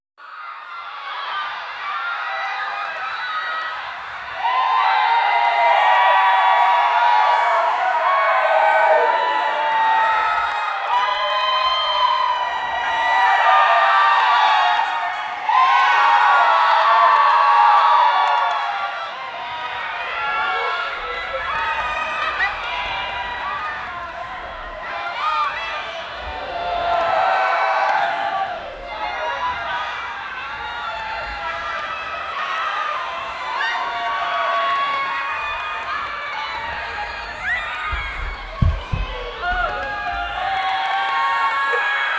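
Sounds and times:
big crowd ambience: 0:00.2 - 0:42.1.

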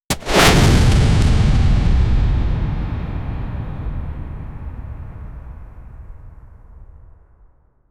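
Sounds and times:
flaming arrow shot from a crossbow: 0:00.1 - 0:02.5.

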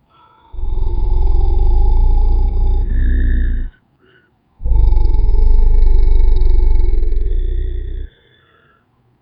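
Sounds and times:
ferocious monster: 0:00.6 - 0:03.8, 0:04.6 - 0:08.1.

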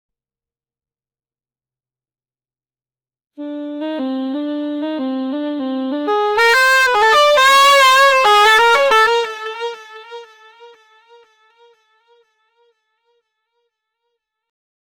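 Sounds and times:
DJ club music with saxophone: 0:03.4 - 0:11.2.

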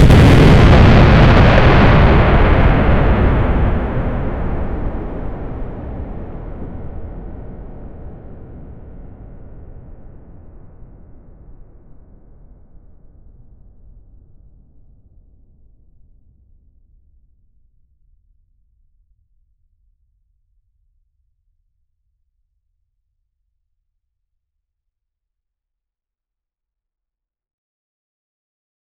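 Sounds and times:
huge explosion booming: 0:00.0 - 0:11.3.

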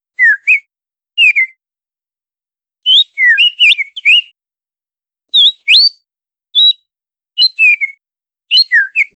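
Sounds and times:
small robot whistling: 0:02.9 - 0:04.3, 0:05.4 - 0:06.0, 0:06.6 - 0:06.8, 0:07.4 - 0:09.1.

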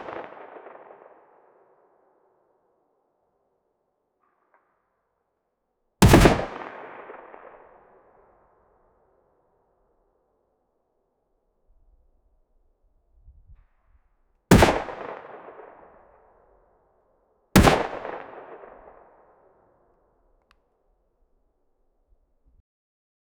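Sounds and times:
echoing pistol fire: 0:06.0 - 0:07.3, 0:14.5 - 0:15.6, 0:17.6 - 0:18.8.

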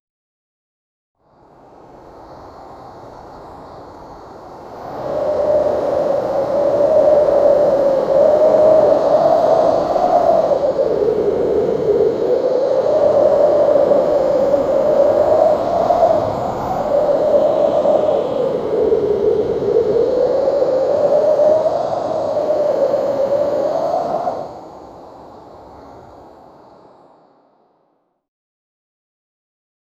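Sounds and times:
gale wind: 0:01.2 - 0:28.2.

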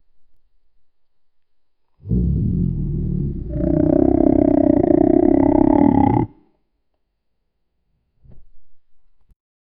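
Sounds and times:
wolf: 0:02.0 - 0:06.4.

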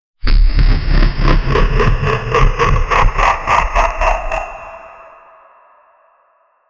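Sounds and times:
giant robot laughter: 0:00.9 - 0:05.7.

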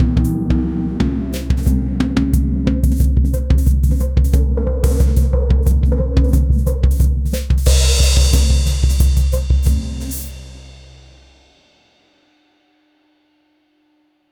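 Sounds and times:
mystical ritual drumming: 0:00.0 - 0:11.4.

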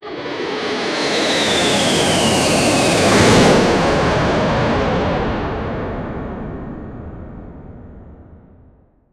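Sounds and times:
jet airplane whoosh: 0:00.1 - 0:06.0.

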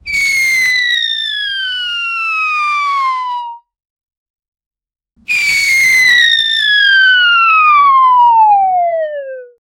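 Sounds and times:
cartoon whistle fall: 0:00.0 - 0:03.6, 0:05.3 - 0:09.6.

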